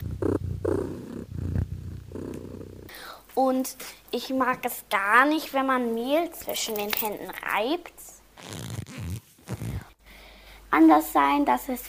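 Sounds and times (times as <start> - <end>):
cat purring: 0.0 - 2.9
speech: 3.4 - 8.8, 10.7 - 11.8.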